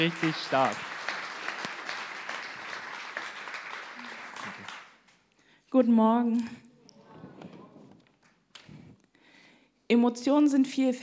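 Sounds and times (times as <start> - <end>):
speech: 0.0 - 0.9, 5.7 - 6.6, 9.9 - 11.0
audience applause at a sermon series: 0.0 - 5.2.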